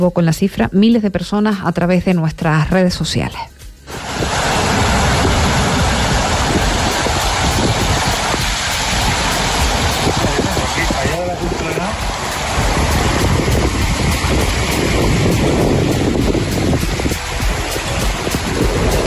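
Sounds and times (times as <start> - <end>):
speech: 0.0 - 4.3
water rushing down a ravine: 3.9 - 19.0.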